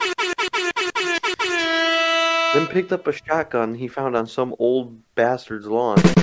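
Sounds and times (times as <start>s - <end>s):
loud brassy air horn blasts: 0.0s - 3.0s
speech: 2.5s - 6.2s.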